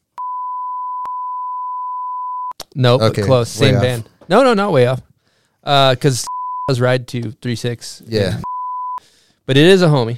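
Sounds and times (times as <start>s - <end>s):
censor beep: 0.2s - 2.6s, 6.3s - 6.7s, 8.4s - 9.0s
speech: 2.8s - 8.5s, 9.5s - 10.1s.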